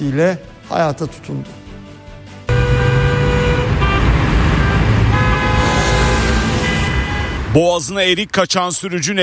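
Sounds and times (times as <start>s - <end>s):
speech: 0.0s - 1.6s, 7.6s - 9.2s
steady road traffic in Selçuklu district of Konya: 2.4s - 8.5s
car horn honking in Selçuklu district of Konya: 2.5s - 7.6s.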